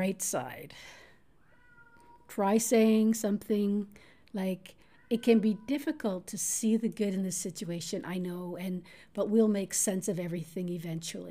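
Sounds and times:
speech: 0.0 - 1.0, 2.3 - 11.2
cat meowing: 1.4 - 2.3.

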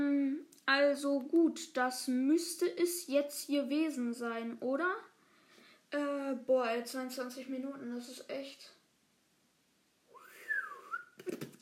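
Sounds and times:
speech: 0.7 - 5.1, 5.9 - 8.8
failed attempt at whistling: 10.1 - 11.6.

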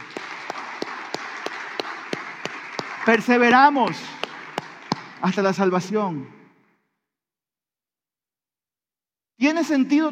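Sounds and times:
sharp claps in unison: 0.0 - 5.9
crowd applauding: 0.0 - 6.0
speech: 3.1 - 4.2, 5.2 - 6.4, 9.4 - 10.1.

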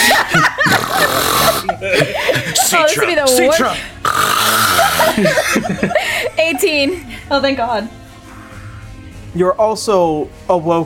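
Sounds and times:
laughter: 0.0 - 3.8, 4.5 - 7.3
voice imitating loud snoring: 0.6 - 1.7, 4.0 - 5.2
speech: 3.0 - 4.0, 5.0 - 8.0, 9.3 - 10.8.

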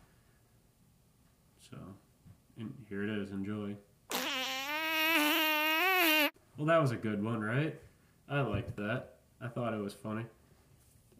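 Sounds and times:
speech: 1.7 - 3.9, 6.6 - 10.4
fart sound effect added in post-production: 4.1 - 6.3.

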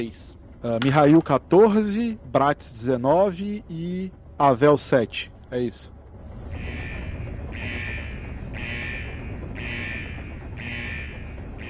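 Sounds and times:
speech: 0.0 - 5.9
steady noisy background: 0.0 - 11.6
loud harsh alarm: 6.5 - 11.6.

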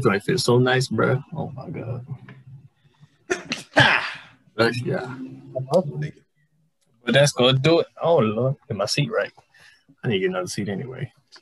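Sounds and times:
speech: 0.0 - 2.3, 4.6 - 6.2, 7.1 - 9.4, 10.0 - 11.2
person sneezing: 3.3 - 4.3.

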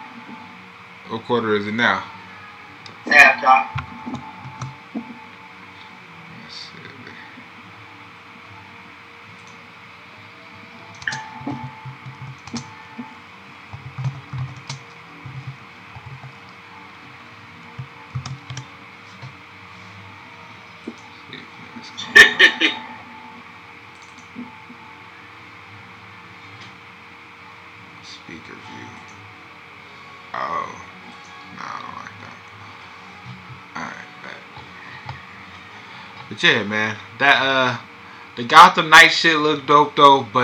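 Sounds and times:
faint sounds: 0.0 - 40.4
steady electronic hum: 0.0 - 40.4
speech: 1.1 - 2.2, 3.1 - 3.8, 36.4 - 40.4
keyboard typing of a message: 3.7 - 5.2, 10.9 - 13.1, 13.7 - 16.4, 17.8 - 19.4, 23.9 - 24.5
laughter: 22.0 - 22.9.

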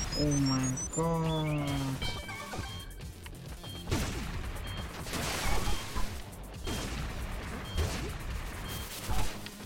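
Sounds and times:
speech: 0.2 - 2.3
bomb exploding in a video game: 3.9 - 6.0, 6.6 - 9.1.

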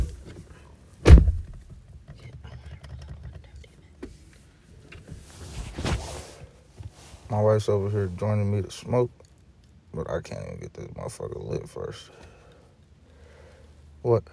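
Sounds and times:
brief rustling burst: 0.0 - 8.5
quiet shuffling: 0.0 - 8.9
door slamming shut with a heavy thunk: 1.0 - 1.6
speech: 7.3 - 9.2, 10.0 - 12.3, 14.0 - 14.3.

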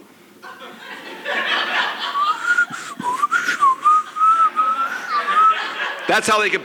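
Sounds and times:
laughter: 0.4 - 6.6
person whistling a tune: 2.2 - 5.6
speech: 6.1 - 6.6.

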